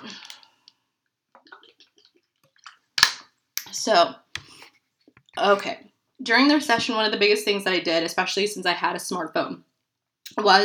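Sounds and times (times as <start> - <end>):
person sipping and swallowing water: 1.4 - 2.9
speech: 3.8 - 4.2, 5.4 - 9.7, 10.4 - 10.6.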